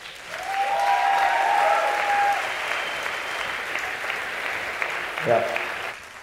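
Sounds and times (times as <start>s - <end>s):
crowd applauding: 0.0s - 6.2s
whistle or cheer from the crowd: 0.3s - 3.8s
speech: 5.2s - 5.6s.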